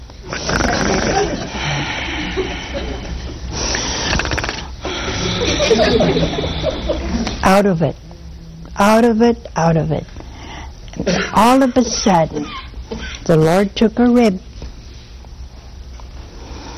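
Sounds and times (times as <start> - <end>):
man imitating loud snoring with his voice: 0.3 - 2.1, 3.6 - 5.7
laughter: 0.9 - 3.5, 4.9 - 7.4
speech: 5.7 - 6.6, 7.4 - 8.0, 8.8 - 10.2, 11.0 - 14.5.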